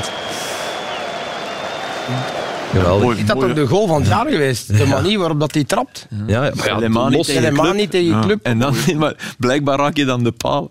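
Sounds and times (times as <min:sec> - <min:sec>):
stadium crowd applauding in a large space: 0:00.0 - 0:03.8
speech: 0:02.1 - 0:10.6.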